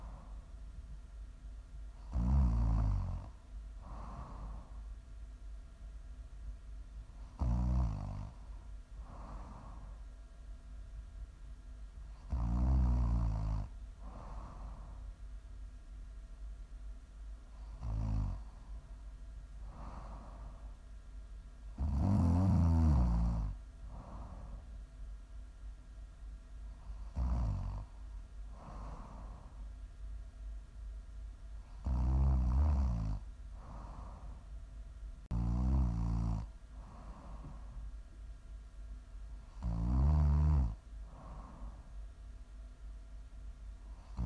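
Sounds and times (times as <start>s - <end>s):
soft breaths in and out: 0.0s - 1.1s, 3.3s - 5.7s, 8.0s - 10.9s, 13.2s - 15.8s, 16.4s - 21.8s, 23.1s - 25.4s, 26.2s - 30.6s, 32.6s - 35.4s, 36.4s - 39.6s, 40.7s - 44.2s
constant low hum: 0.0s - 44.2s
loud snoring: 2.0s - 4.3s, 7.4s - 8.4s, 12.2s - 13.7s, 17.7s - 18.4s, 21.8s - 24.1s, 27.0s - 27.9s, 31.8s - 33.8s, 35.3s - 36.5s, 39.5s - 41.5s, 44.0s - 44.2s.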